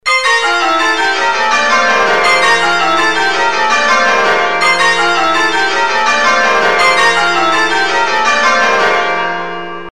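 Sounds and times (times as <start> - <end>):
church bells change ringing: 0.0 - 9.9.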